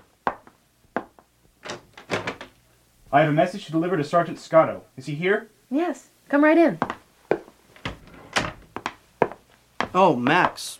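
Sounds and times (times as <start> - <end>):
wooden door opening with thunks, rattling and scraping: 1.6 - 2.6, 7.7 - 8.9
speech: 3.1 - 6.9, 10.0 - 10.7.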